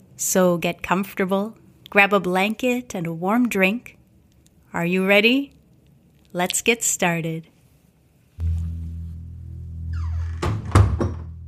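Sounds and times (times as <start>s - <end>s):
speech: 0.2s - 4.0s, 4.7s - 5.6s, 6.3s - 7.5s
front door creaking open: 9.8s - 11.4s
front door thudding shut as it latches: 10.0s - 11.4s.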